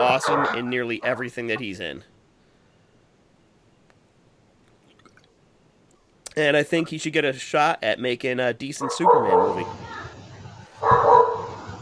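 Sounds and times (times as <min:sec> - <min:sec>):
speech: 0:00.0 - 0:02.1, 0:06.4 - 0:09.8
low steady hum: 0:00.0 - 0:11.8
dog barking: 0:08.8 - 0:09.8, 0:10.8 - 0:11.6.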